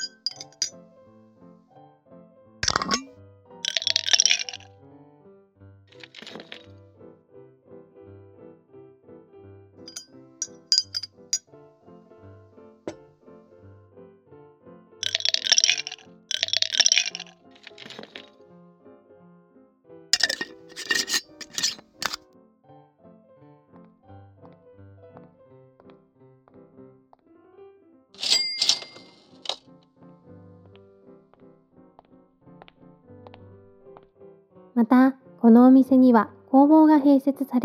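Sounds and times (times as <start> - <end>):
hard candies clinking into a glass jar in a candy shop: 0.0 - 0.8, 2.6 - 4.7, 5.9 - 6.7, 9.9 - 11.4, 15.0 - 18.4, 20.2 - 22.2, 28.2 - 29.7
speech: 34.8 - 37.6.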